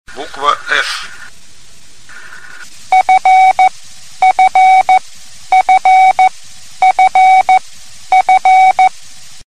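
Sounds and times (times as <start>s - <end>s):
CW morse code tones: 2.9s - 8.9s.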